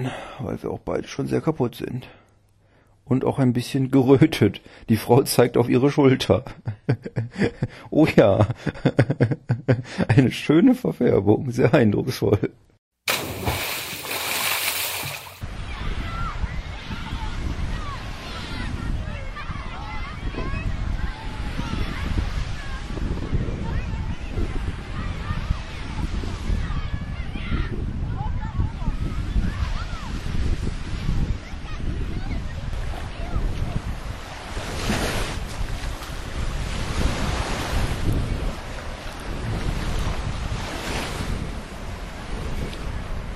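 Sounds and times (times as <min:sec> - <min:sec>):
speech: 0:00.0 - 0:02.2, 0:03.1 - 0:12.6
laughter: 0:08.6 - 0:09.8
ocean waves washing onto a beach: 0:13.1 - 0:26.7, 0:28.4 - 0:43.3
strong wind buffeting the microphone: 0:15.4 - 0:43.3.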